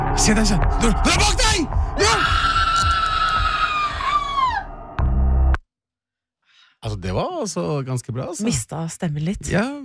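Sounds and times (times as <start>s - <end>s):
speech: 0.2s - 2.5s, 7.2s - 9.8s
person screaming loudly with a high-pitched scream: 1.9s - 4.8s.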